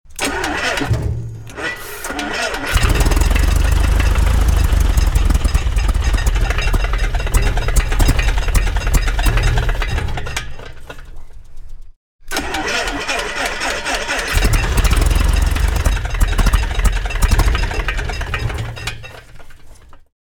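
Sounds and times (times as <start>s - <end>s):
aircraft engine starting: 0.2s - 0.9s, 1.5s - 9.9s, 12.3s - 18.6s.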